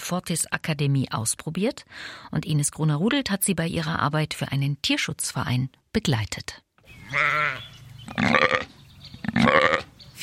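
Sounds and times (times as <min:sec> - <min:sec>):
speech: 0:00.1 - 0:08.6
sheep bleating on a fenced meadow in Hartmannsdorf near Chemnitz, Germany: 0:07.0 - 0:08.7, 0:09.3 - 0:09.9.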